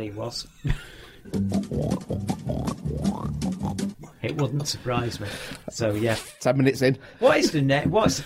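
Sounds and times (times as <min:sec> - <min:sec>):
speech: 0:00.0 - 0:08.2
pig-like oinks and guttural animal grunts: 0:01.5 - 0:04.0.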